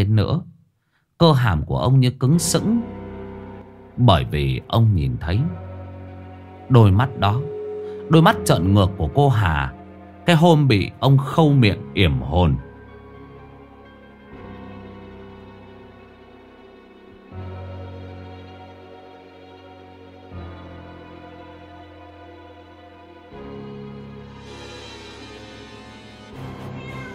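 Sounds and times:
speech: 0.2 - 0.5, 1.2 - 3.0, 4.0 - 5.6, 6.7 - 7.5, 8.1 - 12.7
cat meowing in long wailing cries: 26.5 - 27.1.

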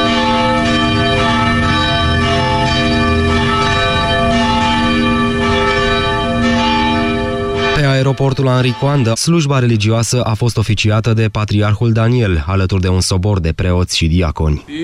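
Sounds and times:
church, cathedral and monastery bells ringing together across a country: 0.0 - 9.8
speech: 8.2 - 14.8.

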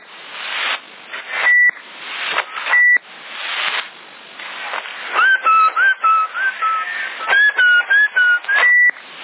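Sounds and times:
CB radio static bursts: 0.0 - 9.2
person whistling through a CB radio in Sassari: 5.1 - 9.0.

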